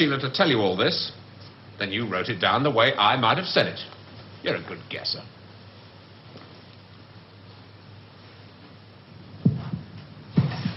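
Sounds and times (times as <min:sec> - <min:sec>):
speech: 0:00.0 - 0:01.2, 0:01.8 - 0:05.4
faint hum: 0:00.0 - 0:10.7
heart beating through a chest: 0:09.4 - 0:10.7.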